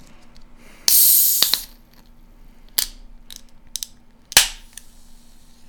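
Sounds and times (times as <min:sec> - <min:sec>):
cider can fizzing hiss: 0:00.9 - 0:01.8
sharp snap of shaken cider can opening: 0:00.9 - 0:01.8, 0:02.8 - 0:04.9.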